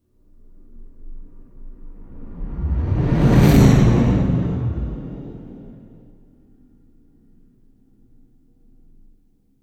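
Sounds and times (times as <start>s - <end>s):
race whoosh: 2.0s - 6.1s.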